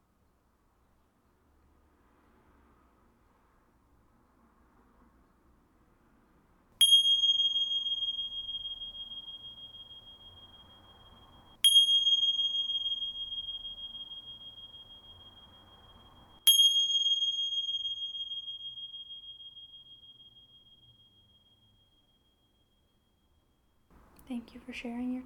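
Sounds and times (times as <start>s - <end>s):
bell ringing to end meditation practice: 6.8s - 21.3s
speech: 24.3s - 25.2s.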